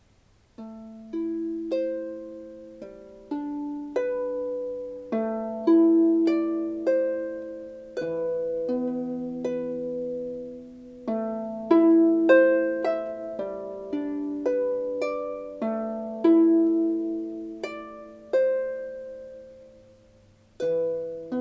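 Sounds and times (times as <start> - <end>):
harp playing: 0.6 - 21.3.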